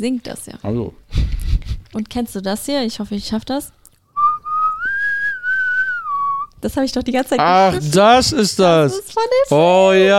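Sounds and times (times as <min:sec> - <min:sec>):
speech: 0:00.0 - 0:01.1, 0:02.0 - 0:03.8, 0:06.6 - 0:10.1
person whistling a short melody: 0:04.2 - 0:06.5.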